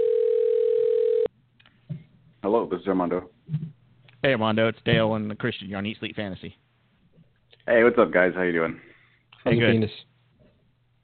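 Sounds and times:
phone ringback tone on an outgoing call: 0.0 - 1.3
speech: 2.4 - 6.6, 7.7 - 10.1.

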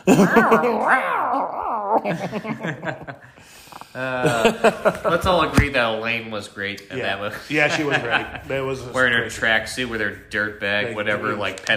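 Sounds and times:
laughter: 0.0 - 1.2, 1.9 - 5.6, 6.9 - 9.2
speech: 0.0 - 11.7
cat growling: 0.1 - 2.4.

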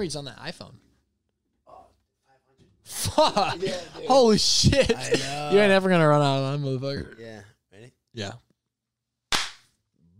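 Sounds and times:
speech: 0.0 - 0.9, 2.9 - 8.4
laughter: 2.9 - 5.7
single sharp hand clap to sync recording: 9.3 - 9.7.

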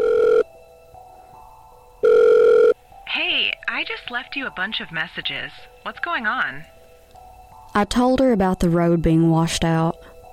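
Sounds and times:
ringback tone in a phone handset after dialing a call: 0.0 - 0.5, 2.0 - 2.8
speech: 3.8 - 6.8, 7.7 - 10.1.

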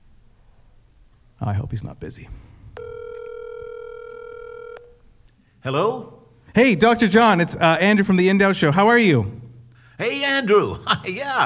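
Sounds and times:
speech: 1.4 - 2.6, 5.6 - 9.4, 10.0 - 11.4
ringback tone of an outgoing telephone call: 2.8 - 5.1.

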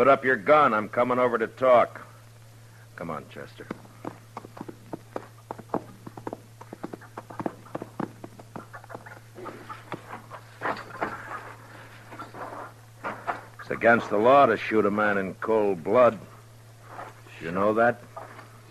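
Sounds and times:
speech: 0.0 - 2.1, 3.0 - 3.8, 13.8 - 16.3, 17.4 - 18.1
horse hooves clattering: 3.4 - 13.7.

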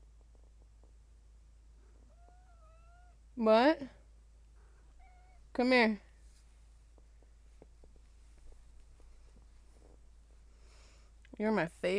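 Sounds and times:
cat meowing faintly in the background: 2.0 - 3.2, 4.9 - 5.5
speech: 3.4 - 4.0, 5.6 - 6.0, 11.4 - 11.9
soft scattered taps: 6.9 - 10.1.

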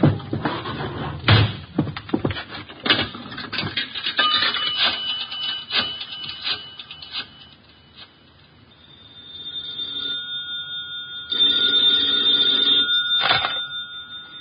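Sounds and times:
clattering knocks and thumps of objects being handled: 0.0 - 5.0
telephone ringing with an electric bell tone: 4.2 - 14.4.

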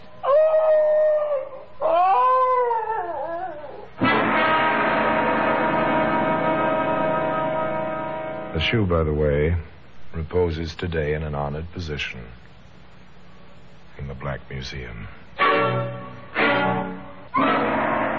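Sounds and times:
dog howling: 0.2 - 4.0
loud sustained brassy chord: 4.0 - 9.0, 15.4 - 18.1
speech: 8.6 - 12.5, 14.1 - 16.0.

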